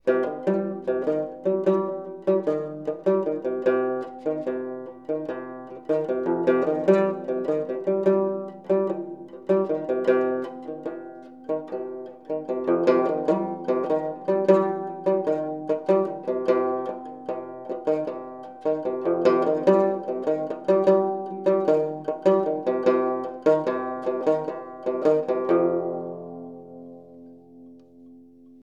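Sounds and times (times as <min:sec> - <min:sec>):
fretless instrument: 0:00.0 - 0:28.6.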